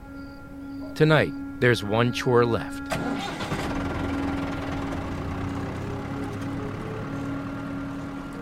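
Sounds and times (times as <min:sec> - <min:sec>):
speech: 0:01.0 - 0:03.5
tractor engine starting and idling on an old farm: 0:02.8 - 0:08.3.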